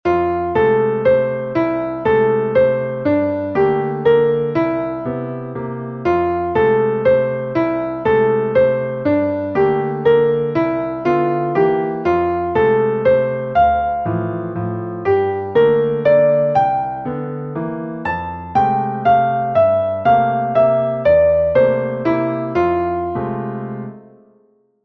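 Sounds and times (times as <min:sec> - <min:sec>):
solo waltz melody: 0:00.1 - 0:24.2.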